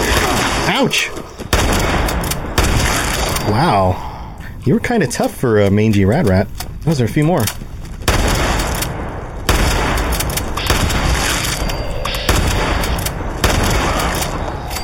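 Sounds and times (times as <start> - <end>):
video game gunshots fired at mutated rats: 0.0 - 3.5, 8.0 - 14.8
speech: 0.7 - 1.9, 3.5 - 7.7.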